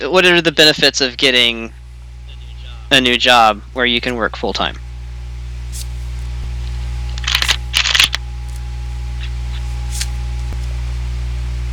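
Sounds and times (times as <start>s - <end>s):
speech: 0.0s - 1.8s, 2.9s - 4.8s
steady low electrical hum: 0.0s - 11.7s
deck of cards being shuffled for a card reading: 5.7s - 10.8s.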